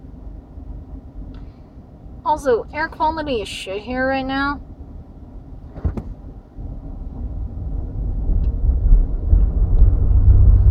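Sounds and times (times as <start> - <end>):
car driving over cobblestones: 0.0 - 10.6
speech: 2.3 - 4.7
brief knocks: 5.7 - 6.2.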